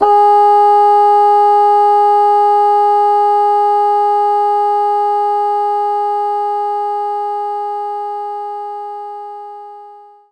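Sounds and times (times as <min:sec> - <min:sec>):
bassoon playing G sharp 4: 0:00.0 - 0:10.3.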